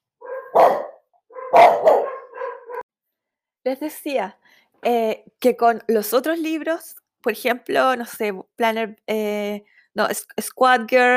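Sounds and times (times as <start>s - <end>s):
dogs barking: 0.2s - 2.8s
speech: 3.6s - 11.1s.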